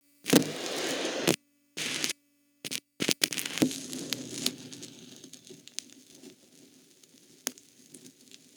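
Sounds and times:
record needle drop on vinyl: 0.3s - 6.0s.

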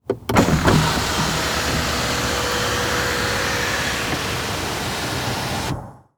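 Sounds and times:
GM Envoy truck with open sunroof: 0.0s - 6.0s.

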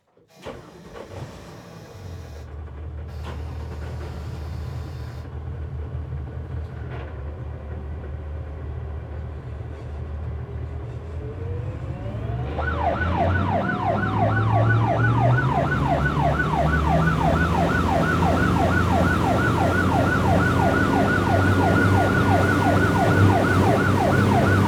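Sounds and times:
police boat engine starting, driving and shutting off: 0.1s - 6.6s, 11.3s - 24.6s
police boat sirens: 11.2s - 24.6s.

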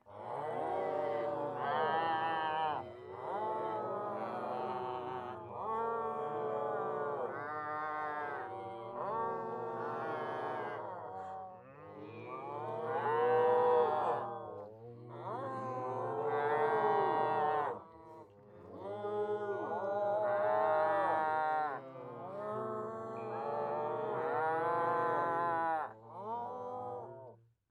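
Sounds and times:
human crowd: 0.0s - 27.4s.

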